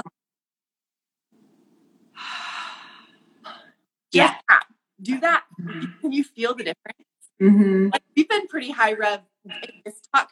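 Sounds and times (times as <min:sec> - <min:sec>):
deep belly breath: 0:02.1 - 0:03.8
speech: 0:04.1 - 0:04.4, 0:05.0 - 0:10.3.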